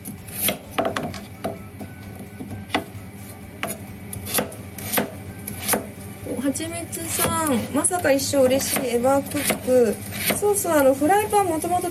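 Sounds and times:
knife scraping a cutting board: 0.3 - 1.2, 8.6 - 10.5
knife mincing carrots on a cutting board: 0.3 - 1.9, 2.7 - 2.9, 3.6 - 5.9, 8.6 - 10.5
speech: 6.6 - 11.8.

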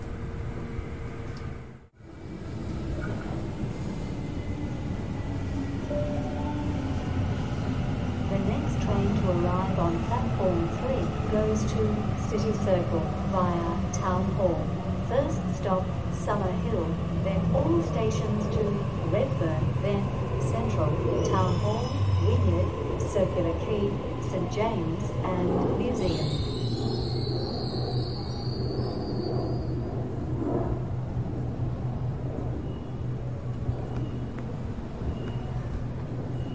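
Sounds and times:
steady low rumble of a train ride: 0.0 - 36.5.

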